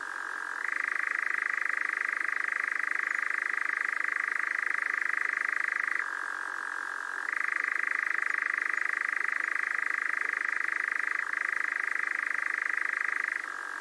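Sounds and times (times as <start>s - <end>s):
nightjar churr, a continuous whirring trill: 0.0s - 13.7s.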